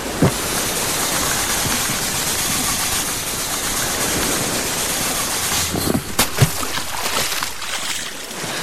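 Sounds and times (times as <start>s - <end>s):
life raft inflating with rushing hiss of gas: 0.0s - 6.2s
sharp knocks and pops of inflating life raft: 0.2s - 0.5s, 5.8s - 7.9s.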